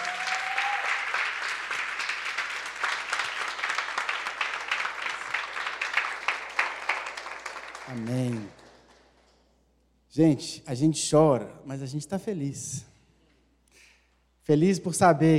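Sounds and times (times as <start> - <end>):
church audience applauding: 0.0 - 9.5
speech: 7.9 - 8.6, 10.1 - 12.9, 14.5 - 15.3.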